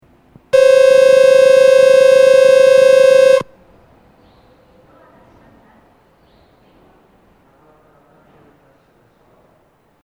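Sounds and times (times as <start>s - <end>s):
train departure buzzer from flat speaker: 0.6s - 3.5s.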